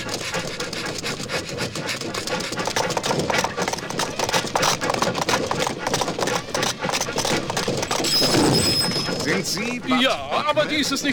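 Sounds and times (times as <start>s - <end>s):
derailed runaway locomotive racing through sand: 0.0s - 11.1s
speech: 9.8s - 11.1s.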